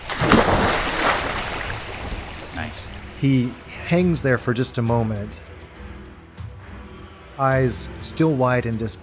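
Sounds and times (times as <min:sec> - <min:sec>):
heavy splash of a large creature sinking into water in a stone chamber: 0:00.0 - 0:03.2
water churning and sloshing: 0:00.0 - 0:03.8
speech: 0:02.6 - 0:05.5, 0:07.4 - 0:09.0.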